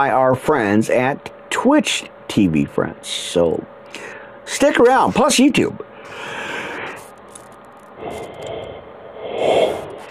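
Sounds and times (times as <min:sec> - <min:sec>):
speech: 0:00.0 - 0:06.4
person yawning: 0:08.0 - 0:10.0.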